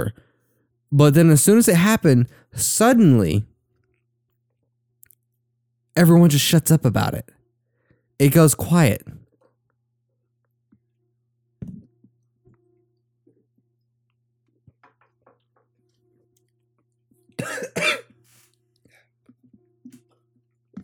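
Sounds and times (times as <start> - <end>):
speech: 0.0 - 0.2, 0.9 - 3.5, 6.0 - 7.4, 8.2 - 9.2
person coughing after a drink went down the wrong pipe: 17.4 - 18.1
throat clearing: 17.4 - 18.1.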